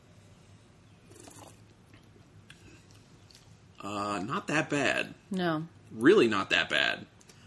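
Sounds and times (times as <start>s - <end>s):
low hum: 0.0s - 7.4s
soft mouth and swallowing noises: 1.0s - 3.5s
person sipping high-ABV chocolate- and vanilla-flavored liquor: 1.1s - 3.0s
speech: 3.8s - 7.1s.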